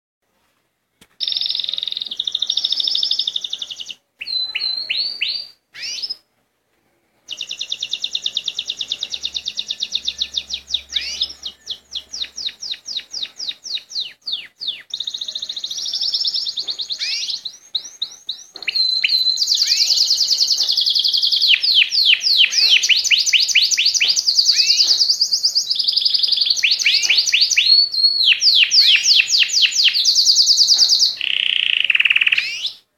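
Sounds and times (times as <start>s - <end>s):
Llarguet canary singing: 1.2s - 6.3s, 7.3s - 32.8s.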